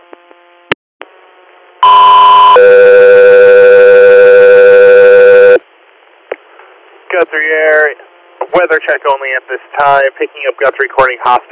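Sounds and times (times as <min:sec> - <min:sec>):
two-tone radio dispatch alert paging an air medical crew: 0:01.8 - 0:05.6
speech: 0:08.7 - 0:11.4.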